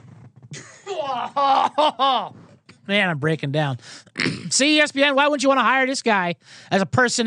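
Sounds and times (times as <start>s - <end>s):
laughter: 0.5s - 2.4s
speech: 0.5s - 7.2s
harsh cough: 4.2s - 4.6s.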